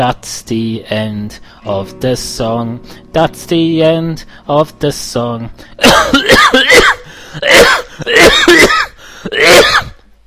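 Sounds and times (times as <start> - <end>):
speech: 0.0 - 6.8
loud harsh coughs: 5.8 - 10.0.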